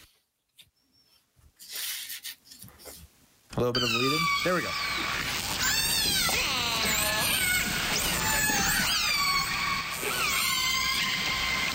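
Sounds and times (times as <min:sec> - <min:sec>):
speech: 0:03.6 - 0:05.2
whale calling with high squeals and whistles: 0:03.8 - 0:11.7.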